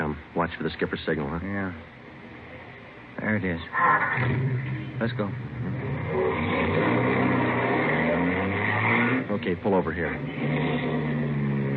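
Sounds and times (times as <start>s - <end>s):
speech: 0.5s - 2.0s, 3.2s - 5.5s, 6.1s - 7.2s, 9.3s - 11.1s
car engine revving as the vehicle pulls away: 3.7s - 11.7s.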